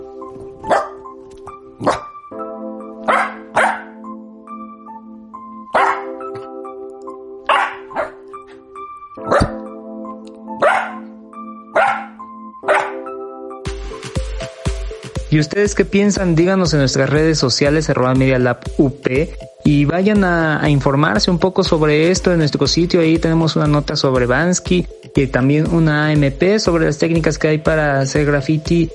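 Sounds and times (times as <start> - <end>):
dog barking: 0.6 - 1.0, 1.8 - 2.1, 3.0 - 4.0, 5.7 - 6.4, 7.5 - 8.3, 9.2 - 9.7, 10.6 - 11.1, 11.7 - 13.1
speech: 15.3 - 28.9.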